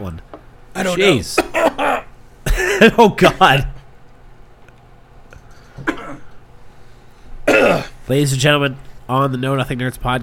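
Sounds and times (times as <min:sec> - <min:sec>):
speech: 0:00.0 - 0:01.9, 0:02.8 - 0:03.7, 0:08.1 - 0:10.2
quiet room hum: 0:00.0 - 0:10.2
person coughing and choking on water: 0:01.3 - 0:03.0, 0:05.8 - 0:06.4, 0:07.4 - 0:08.0.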